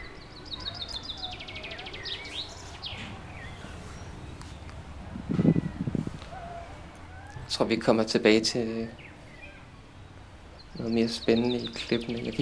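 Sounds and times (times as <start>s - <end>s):
birds chirping and singing outdoors: 0.0s - 12.3s
low rustle: 2.4s - 6.8s
speech: 7.6s - 9.0s, 10.8s - 12.3s.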